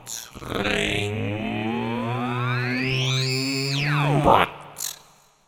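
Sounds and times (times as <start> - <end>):
ring modulated tone: 0.4 - 4.5.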